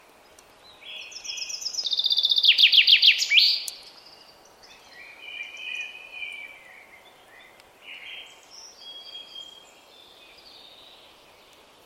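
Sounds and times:
common chaffinch song: 0.0s - 11.8s.

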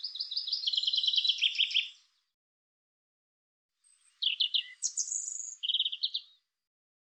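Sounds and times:
European robin song: 0.0s - 2.3s, 3.8s - 6.5s.

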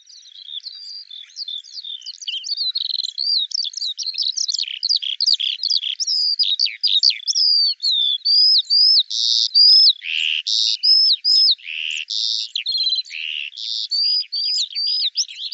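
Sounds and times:
Eurasian skylark song: 0.0s - 15.5s.

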